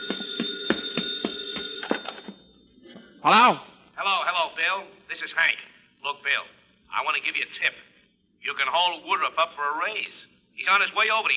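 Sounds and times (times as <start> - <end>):
telephone bell ringing: 0.0 - 2.7
speech: 3.2 - 11.3.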